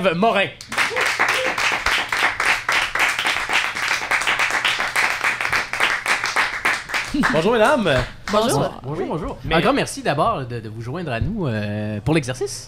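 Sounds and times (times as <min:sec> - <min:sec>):
speech: 0:00.0 - 0:00.7, 0:07.1 - 0:12.6
crowd applauding to welcome arriving guests: 0:00.6 - 0:08.6.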